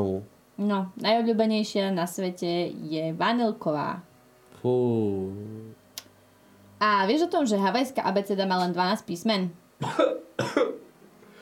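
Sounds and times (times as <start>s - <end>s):
speech: 0.0s - 5.8s, 6.8s - 10.8s
person coughing: 9.8s - 10.9s.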